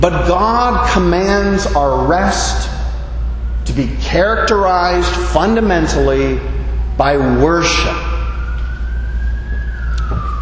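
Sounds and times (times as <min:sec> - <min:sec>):
speech: 0:00.0 - 0:02.8, 0:03.6 - 0:08.0
emergency vehicle siren wailing: 0:02.1 - 0:10.4.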